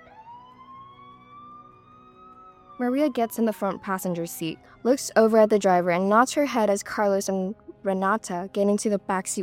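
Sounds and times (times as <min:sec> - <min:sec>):
distant police siren wailing: 0:00.0 - 0:06.2
speech: 0:02.8 - 0:09.4.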